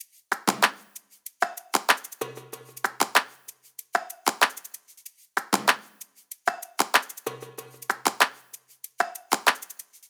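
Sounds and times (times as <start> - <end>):
pop drum top loop: 0.3 - 3.4, 4.0 - 4.7, 5.4 - 8.4, 9.0 - 9.8.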